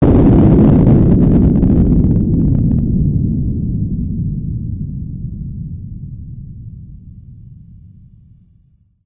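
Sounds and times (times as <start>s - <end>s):
blast: 0.0s - 6.4s.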